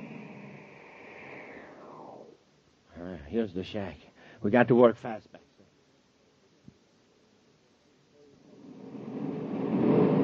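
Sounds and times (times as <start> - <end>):
speech: 3.2 - 5.4
deep roaring rumble of a spaceship landing: 8.6 - 10.2.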